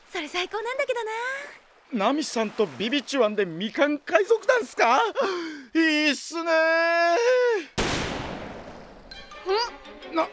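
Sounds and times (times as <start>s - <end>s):
speech: 0.1s - 7.8s, 9.4s - 10.3s
gunshot in an audio drama set at sea: 7.8s - 9.4s.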